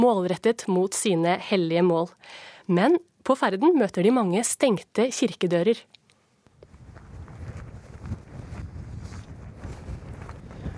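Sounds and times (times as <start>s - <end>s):
speech: 0.0s - 6.0s
steady gusting cold wind buffeting the microphone on a mountain plateau at Hjerkinn on Dovre, Norway: 6.6s - 10.7s
faint scuffing sounds: 6.7s - 10.7s.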